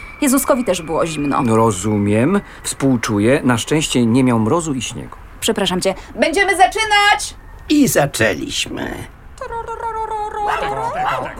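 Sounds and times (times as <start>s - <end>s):
speech: 0.2s - 11.3s
human voices imitating a dog barking and howling: 9.9s - 11.3s.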